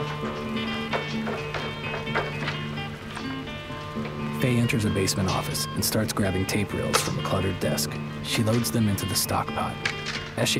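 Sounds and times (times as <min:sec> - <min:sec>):
teen girl carrying a stock pot thudding down a staircase inside a library: 0:00.0 - 0:04.3
steady tonal musical background: 0:00.0 - 0:10.5
speech: 0:04.4 - 0:10.5.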